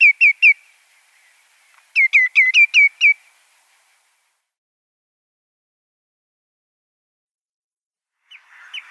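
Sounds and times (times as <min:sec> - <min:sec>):
Common greenshank nestling high chirps: 0:00.0 - 0:04.1.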